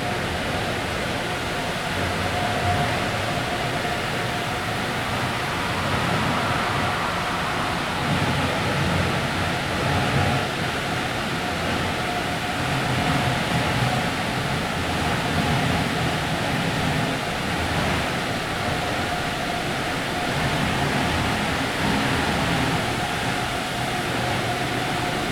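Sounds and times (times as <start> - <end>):
car wash: 0.1 - 25.3.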